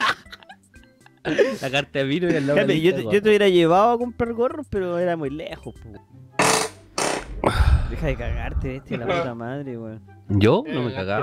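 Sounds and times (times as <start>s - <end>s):
speech: 1.2s - 6.3s, 7.9s - 11.2s
chair creaking under shifting weight: 6.4s - 7.6s.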